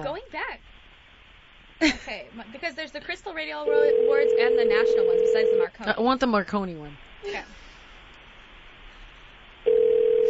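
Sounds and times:
speech: 0:00.0 - 0:00.8, 0:01.8 - 0:07.7
phone line ringing tone on an unanswered outgoing call: 0:03.6 - 0:05.7, 0:09.7 - 0:10.2.

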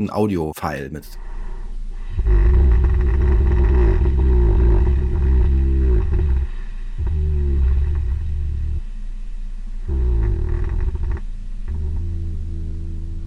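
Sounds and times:
speech: 0:00.0 - 0:01.3
animal snoring in slow drawn-out breaths: 0:02.0 - 0:08.9, 0:09.8 - 0:13.2.

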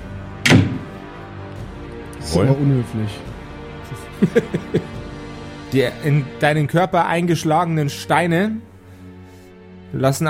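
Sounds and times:
door slamming shut with a sharp heavy thud: 0:00.4 - 0:01.1
speech: 0:02.2 - 0:03.4, 0:04.2 - 0:05.0, 0:05.7 - 0:08.7, 0:09.9 - 0:10.2
laughter: 0:03.8 - 0:05.0.

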